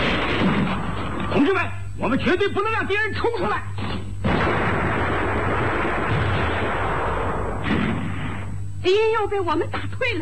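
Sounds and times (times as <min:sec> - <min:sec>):
massed gunfire in a battle scene: 0:00.0 - 0:01.1, 0:04.2 - 0:08.6
speech: 0:01.4 - 0:04.7, 0:08.8 - 0:10.2.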